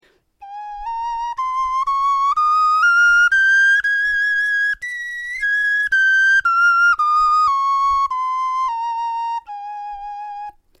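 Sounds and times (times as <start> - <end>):
bone flute playing a scale: 0.4 - 10.6.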